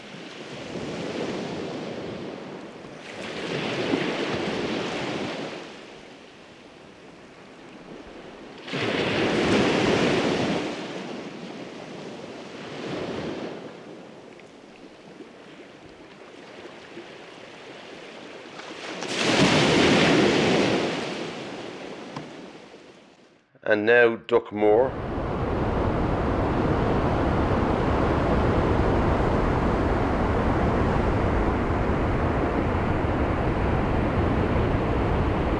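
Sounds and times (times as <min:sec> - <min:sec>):
waves breaking on a beach in West Clare, Ireland: 0:00.0 - 0:23.3, 0:24.9 - 0:35.5
speech: 0:23.7 - 0:25.1.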